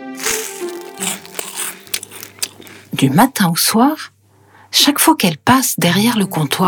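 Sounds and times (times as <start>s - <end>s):
baguette crust being broken and bitten at a bakery counter: 0.0s - 3.4s
speech: 3.0s - 4.2s, 4.8s - 6.6s.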